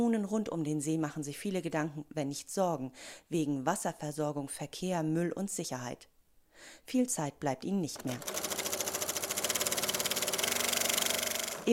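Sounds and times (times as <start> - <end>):
speech: 0.0 - 8.4
sewing machine stitching yellow-orange fabric: 7.9 - 11.7.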